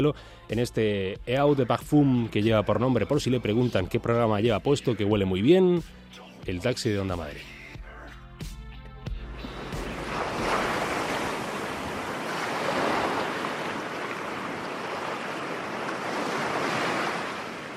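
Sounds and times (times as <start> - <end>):
speech: 0.0 - 7.6
ocean waves washing onto a beach: 9.4 - 17.7.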